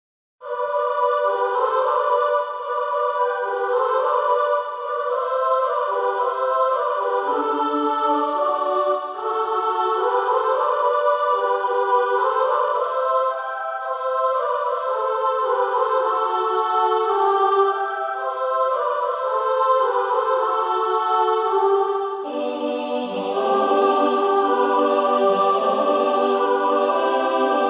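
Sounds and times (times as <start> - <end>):
song sung as a canon: 0.4 - 27.6.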